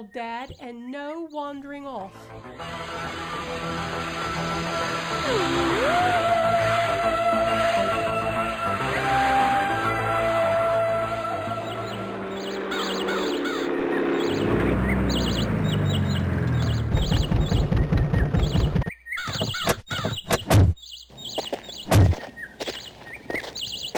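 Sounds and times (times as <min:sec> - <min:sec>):
speech: 0:00.0 - 0:09.6
birds chirping and tweeting outdoors: 0:00.0 - 0:23.9
horse hooves clip-clopping: 0:14.4 - 0:20.2, 0:21.1 - 0:23.9.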